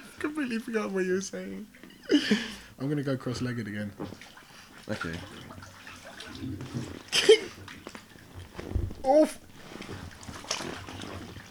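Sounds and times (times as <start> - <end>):
water trickling: 0.0 - 11.4
speech: 0.3 - 5.6, 6.4 - 6.9
water splashing in sloshing bursts: 3.4 - 11.4.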